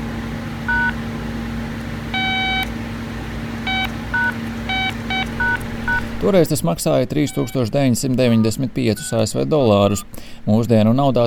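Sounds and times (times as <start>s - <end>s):
steady low hum: 0.6s - 9.1s
mobile phone keypad dialing tones: 0.7s - 1.0s, 2.1s - 2.8s, 3.7s - 6.2s, 7.2s - 9.2s
speech: 6.2s - 11.2s.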